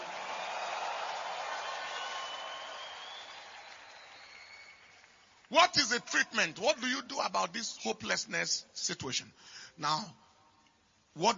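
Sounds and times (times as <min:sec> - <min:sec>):
crowd clapping and cheering: 0:00.0 - 0:05.5
speech: 0:05.5 - 0:10.2, 0:11.2 - 0:11.3.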